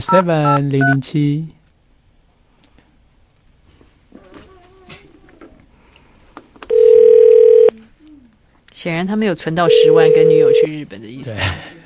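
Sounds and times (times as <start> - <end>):
speech: 0.0 - 1.6, 8.8 - 11.8
telephone tone after a hung-up call: 6.7 - 7.7, 9.7 - 10.7.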